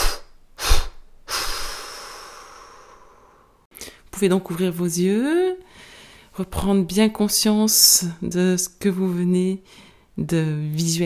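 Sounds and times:
forceful exhalation during a guided breathing exercise: 0.0 - 4.0
speech: 4.2 - 5.6, 6.4 - 11.0.

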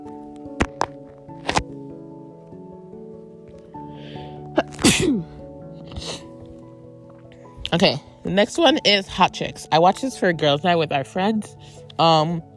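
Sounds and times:
music: 0.0 - 12.5
percussive clicks and thumps: 0.4 - 1.7
person sneezing: 4.6 - 6.3
speech: 7.7 - 12.5.

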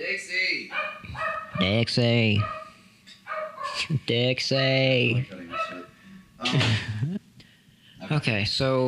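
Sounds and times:
dog yelping: 0.7 - 1.8, 2.4 - 3.8, 5.5 - 5.9
dog barking: 0.7 - 3.9, 5.5 - 5.9
speech: 1.6 - 2.6, 3.9 - 5.4, 6.4 - 7.0, 8.1 - 8.8.

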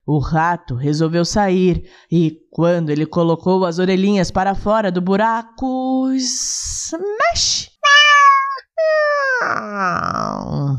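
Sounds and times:
speech: 0.1 - 8.0, 8.8 - 10.7
cat meowing and yowling: 7.8 - 10.5.

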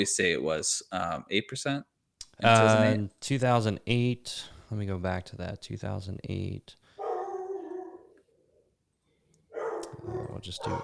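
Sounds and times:
speech: 0.0 - 6.8, 10.0 - 10.8
dog howling: 7.0 - 8.2, 9.6 - 10.8.

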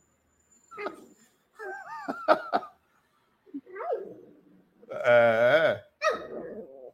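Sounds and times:
person laughing: 1.6 - 2.8
dog growling and grumbling: 3.6 - 6.9.

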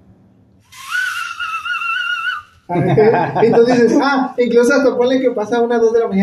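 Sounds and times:
night watchman's whistle blast in a village: 0.6 - 2.7
laughter: 1.1 - 4.3
speech: 2.7 - 6.2.

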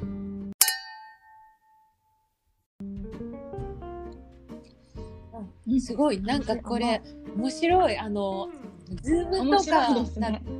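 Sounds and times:
glasses clinking in a toast: 0.6 - 1.9
speech: 5.7 - 10.5.

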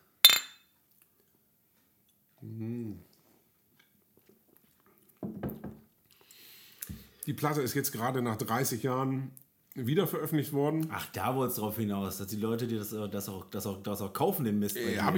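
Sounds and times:
glasses clinking in a toast: 0.2 - 0.6
speech: 7.3 - 15.1.

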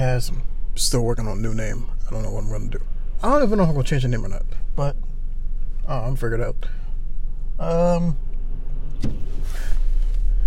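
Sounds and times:
speech: 0.0 - 5.1, 5.9 - 6.8, 7.6 - 8.2, 9.0 - 9.8
faint mechanical whir: 0.0 - 10.4
low engine rumble in a car interior: 0.0 - 10.4
thump or click in a car: 8.9 - 9.4.

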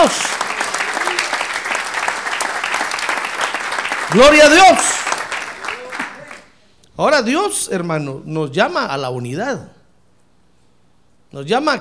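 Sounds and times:
audience applauding: 0.0 - 6.5
speech: 4.1 - 4.9, 7.0 - 9.8, 11.3 - 11.7.

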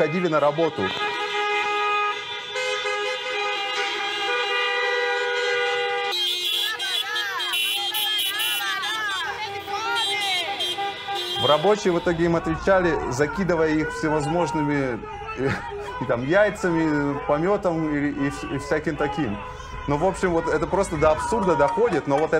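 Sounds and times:
speech: 0.0 - 1.1, 11.4 - 22.3
car horns honking during street protest: 0.0 - 22.3.

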